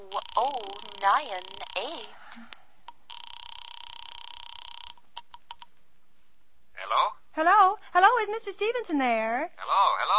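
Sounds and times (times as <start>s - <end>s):
telephone line ringing with warbling electronic buzz: 0.0s - 2.1s, 3.0s - 5.7s
speech: 0.1s - 2.6s, 6.9s - 10.1s.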